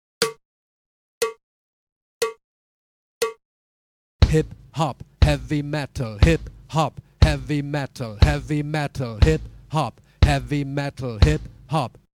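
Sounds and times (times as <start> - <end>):
drum kit practice: 4.2 - 11.9.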